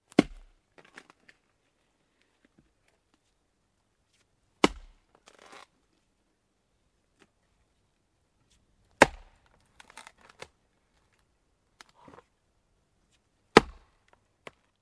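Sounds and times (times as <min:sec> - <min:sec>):
slow deep chopping: 0:04.6 - 0:05.1, 0:09.0 - 0:09.5, 0:13.5 - 0:14.0.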